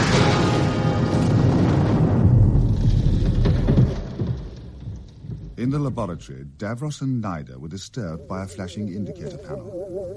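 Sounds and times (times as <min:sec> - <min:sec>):
huge explosion with crackling noise over deep rumbling: 0:00.0 - 0:05.5
speech: 0:05.7 - 0:10.1.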